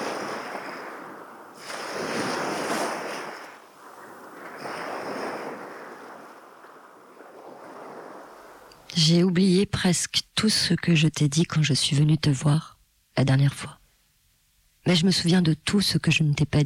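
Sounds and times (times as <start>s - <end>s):
steady hiss of surf: 0.0s - 5.7s
wind rushing across the microphone: 0.0s - 8.7s
ocean waves crashing: 0.0s - 8.8s
speech: 9.0s - 13.8s, 14.8s - 16.6s.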